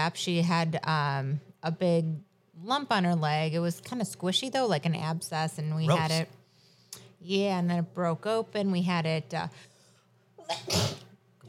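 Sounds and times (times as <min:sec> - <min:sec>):
speech: 0:00.0 - 0:06.4, 0:07.2 - 0:09.7, 0:10.5 - 0:11.0
single loud human sneeze with a breathy intake: 0:10.4 - 0:11.1.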